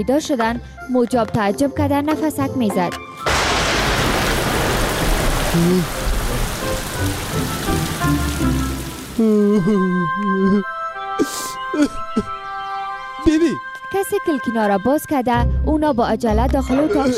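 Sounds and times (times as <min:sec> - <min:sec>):
speech: 0:00.0 - 0:03.3, 0:05.5 - 0:06.0, 0:09.2 - 0:12.3, 0:13.2 - 0:17.1
steady dense rain hissing: 0:03.3 - 0:09.7.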